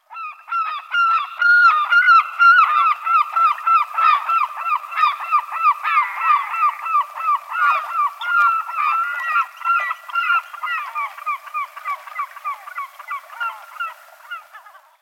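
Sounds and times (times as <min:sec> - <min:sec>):
herring gull voice: 0:00.0 - 0:15.0.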